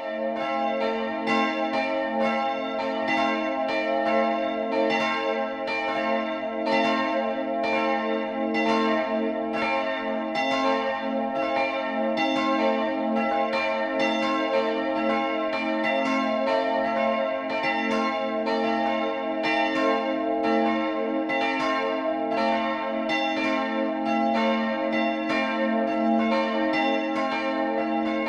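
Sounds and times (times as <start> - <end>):
church bells ringing the noon peal: 0.0 - 28.2.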